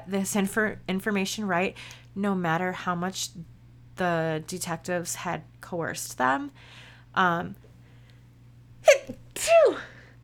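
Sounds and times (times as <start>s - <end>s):
speech: 0.1s - 7.7s, 9.1s - 9.9s
person sneezing: 8.8s - 10.1s.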